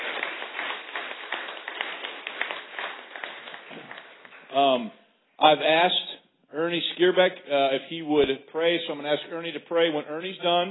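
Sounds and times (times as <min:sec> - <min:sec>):
conference crowd applauding: 0:00.0 - 0:04.3
speech: 0:04.6 - 0:10.6.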